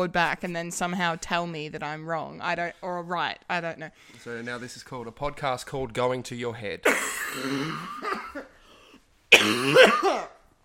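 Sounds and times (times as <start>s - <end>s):
speech: 0.0s - 8.3s, 9.4s - 10.4s
harsh wet coughing: 6.8s - 10.4s
rough throat-clearing rasp: 6.9s - 8.4s.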